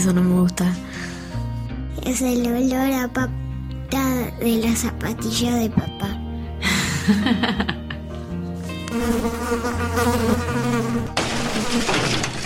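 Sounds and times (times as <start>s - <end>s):
speech: 0.0s - 1.1s, 2.0s - 6.2s, 7.1s - 7.8s, 8.9s - 12.3s
laughter: 6.6s - 8.1s
mosquito buzzing: 8.8s - 11.7s.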